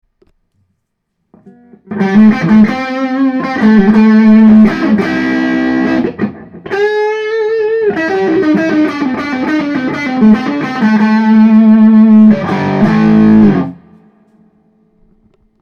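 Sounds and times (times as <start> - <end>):
Gibson Les Paul electric guitar overdriven on neck Burstbucker 1 pickup: 1.3 - 15.6.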